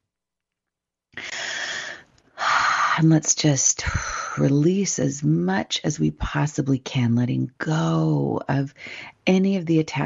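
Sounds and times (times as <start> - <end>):
big deep breath taken during a guided prayer: 1.2 - 2.8
speech: 3.0 - 10.0.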